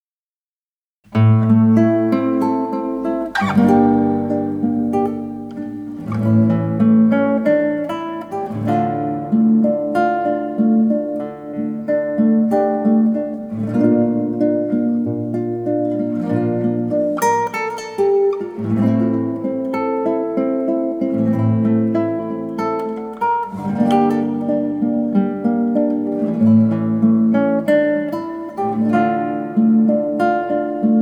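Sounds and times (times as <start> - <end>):
guitar playing: 1.1 - 31.0.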